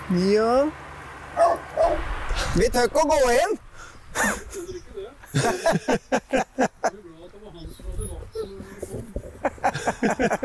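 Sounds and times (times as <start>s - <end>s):
speech: 0.1s - 0.8s, 1.4s - 3.6s, 4.2s - 10.4s
dog barking: 1.4s - 2.1s
laughter: 4.1s - 7.1s, 8.7s - 10.4s.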